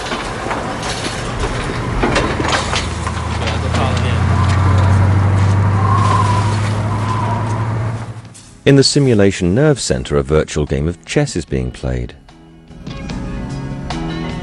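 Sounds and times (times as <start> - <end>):
clanks: 0.0 - 8.6
truck heavy engine rumbling driving into a facility: 0.0 - 14.4
speech: 8.7 - 12.2.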